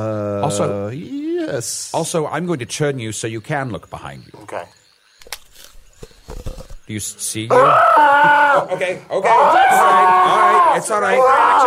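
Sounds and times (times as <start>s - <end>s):
speech: 0.0s - 4.8s, 6.9s - 11.6s
man screaming: 7.5s - 11.6s.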